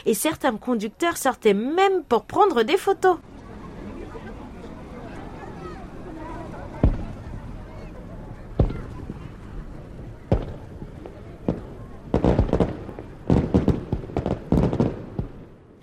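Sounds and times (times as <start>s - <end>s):
speech: 0.0s - 3.4s
fireworks booming and crackling: 6.8s - 7.6s, 8.4s - 15.8s.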